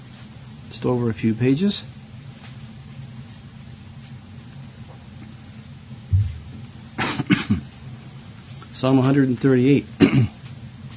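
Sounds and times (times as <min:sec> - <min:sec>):
low quiet room hum: 0:00.0 - 0:10.9
speech: 0:00.7 - 0:02.0, 0:08.8 - 0:10.4
soft low thump: 0:06.1 - 0:06.6
harsh coughs: 0:07.0 - 0:07.7, 0:10.0 - 0:10.4.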